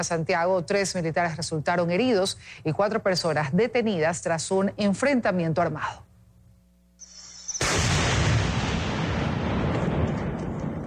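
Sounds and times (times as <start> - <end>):
speech: 0.0 - 6.1
explosion in the Amazon jungle of Napo province during military operations: 7.6 - 10.8.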